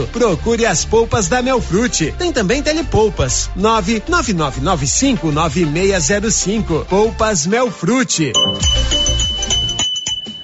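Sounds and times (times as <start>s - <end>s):
speech: 0.0s - 9.3s
doorbell chime of a Minas Gerais handicraft business: 8.3s - 10.4s.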